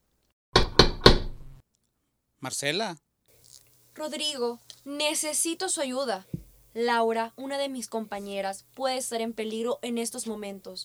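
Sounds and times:
firm knocks on a door: 0.6s - 1.6s
speech: 2.4s - 3.1s, 4.0s - 10.8s.

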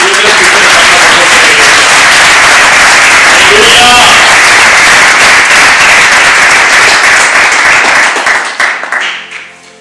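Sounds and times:
scattered cheers: 0.0s - 6.4s
large crowd applauding loudly: 0.0s - 9.5s.

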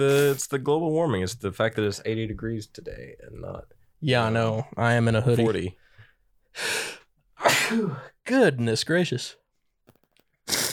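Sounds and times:
speech: 0.0s - 5.8s, 6.6s - 7.0s, 7.7s - 9.4s
person with an allergy sneezing: 7.4s - 8.0s, 10.5s - 10.7s.

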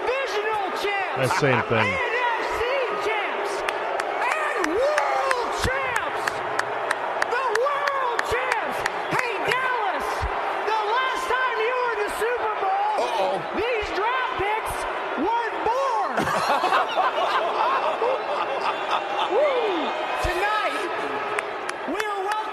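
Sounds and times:
big crowd booing in a packed arena: 0.0s - 22.5s
laughter: 0.9s - 2.8s, 16.0s - 19.9s
speech: 1.2s - 2.1s
scattered sharp claps and bangs: 3.6s - 9.4s.

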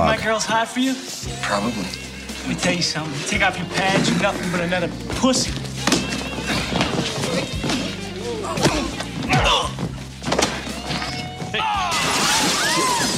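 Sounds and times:
speech: 0.1s - 5.7s
heavy thuds and scuffling: 3.7s - 11.6s
glass shattering as a person is thrown through glass: 11.8s - 13.1s.

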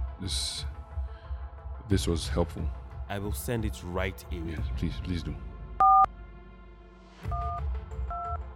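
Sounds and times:
speech: 0.2s - 0.8s, 1.9s - 5.5s
telephone keypad tones as a number is dialed: 5.8s - 6.1s, 7.3s - 7.6s, 8.1s - 8.4s.

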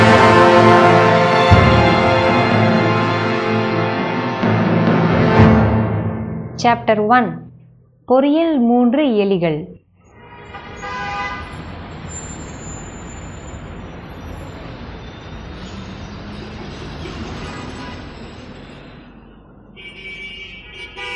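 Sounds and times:
busy city street traffic roar: 0.0s - 5.5s, 10.0s - 21.1s
car horns honking: 0.0s - 5.6s, 10.2s - 13.3s, 19.8s - 21.1s
speech: 6.6s - 7.5s, 8.1s - 9.8s.

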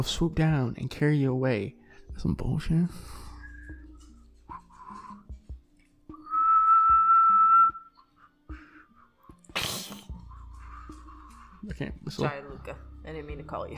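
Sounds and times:
speech: 0.0s - 3.2s, 11.6s - 13.7s
person whistling imitating an animal's call: 3.1s - 5.3s, 6.1s - 8.3s.

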